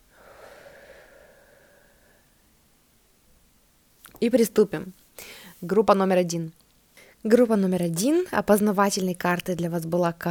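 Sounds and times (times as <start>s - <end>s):
long soft breath during a guided breathing exercise: 0.0s - 2.7s, 5.2s - 5.6s, 6.9s - 7.2s
speech: 4.2s - 6.6s, 7.2s - 10.2s.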